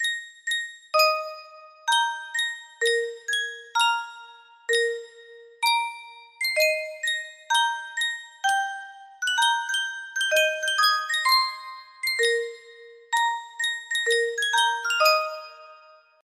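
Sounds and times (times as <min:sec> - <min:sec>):
music box melody: 0:00.0 - 0:16.2.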